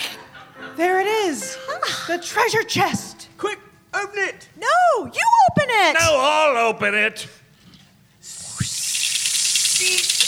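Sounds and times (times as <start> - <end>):
speech: 0.8 - 7.4, 9.8 - 10.1
loud sustained hiss: 8.2 - 10.2.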